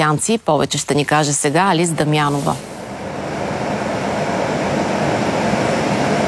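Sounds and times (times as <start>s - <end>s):
speech: 0.0s - 2.8s
rumble and hiss of a moving new metro car heard from inside: 1.8s - 6.2s.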